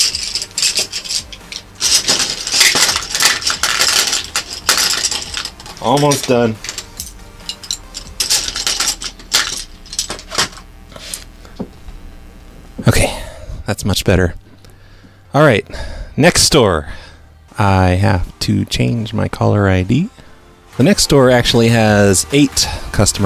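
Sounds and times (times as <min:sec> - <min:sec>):
colored pencils dropped into a can: 0:00.0 - 0:11.2
speech: 0:05.8 - 0:06.7, 0:13.7 - 0:14.4, 0:15.4 - 0:17.0, 0:17.6 - 0:20.2, 0:20.8 - 0:23.2.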